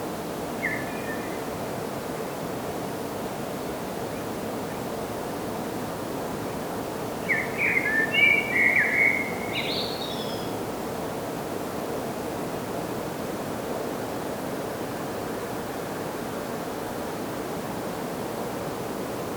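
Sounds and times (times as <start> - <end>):
steady background hiss: 0.0 - 19.3
common blackbird Turdus merula song: 0.6 - 1.4, 7.2 - 10.5.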